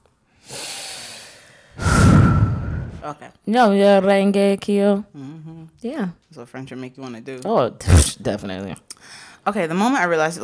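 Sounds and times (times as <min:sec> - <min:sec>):
deep breath taken before answering a question: 0:00.4 - 0:03.0
speech: 0:03.0 - 0:10.4.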